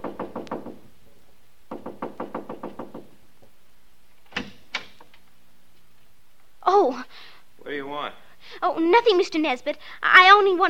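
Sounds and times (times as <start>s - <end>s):
knocking on a house door: 0.0s - 0.9s, 1.7s - 3.2s
speech: 6.9s - 10.6s.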